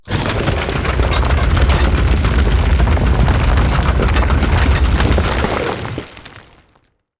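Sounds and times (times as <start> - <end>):
drilling at an archeology event: 0.0 - 5.6.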